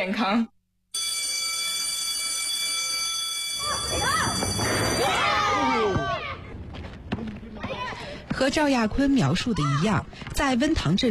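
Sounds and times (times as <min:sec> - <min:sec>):
speech: 0:00.0 - 0:00.6, 0:08.4 - 0:11.0
school bell ringing for end of class: 0:01.0 - 0:06.1
crowd of excited children's voices: 0:03.6 - 0:06.6, 0:07.2 - 0:08.3.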